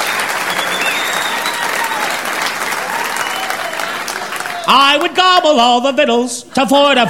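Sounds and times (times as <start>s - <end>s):
faint cheer or whistle: 0.0s - 4.6s
audience applause: 0.0s - 5.2s
speech: 4.7s - 7.0s.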